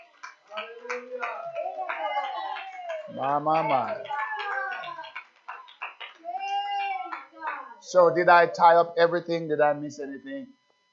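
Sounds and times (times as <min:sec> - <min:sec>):
church audience clapping: 0:00.0 - 0:08.1
raised voices calling out: 0:00.0 - 0:09.1
speech: 0:03.1 - 0:04.1, 0:07.9 - 0:10.6.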